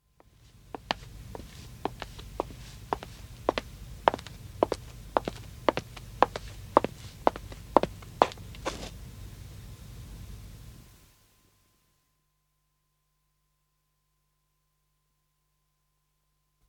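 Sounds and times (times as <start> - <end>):
woman's footsteps on wood approaching and stopping: 0.8 - 9.0.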